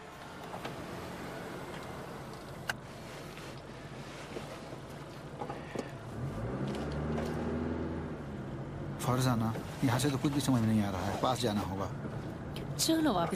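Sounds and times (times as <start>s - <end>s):
vehicle engines idling in a slow traffic jam caused by an accident: 0.0s - 13.3s
engine revving: 6.0s - 9.4s
speech: 9.1s - 12.0s, 12.8s - 13.3s.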